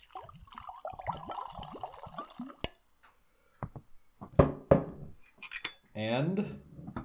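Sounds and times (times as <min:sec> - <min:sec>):
Scotch whisky glugging from a bottle into a glass: 0:00.0 - 0:02.8
glassware clinking and knocking: 0:05.3 - 0:05.8
speech: 0:06.0 - 0:06.7.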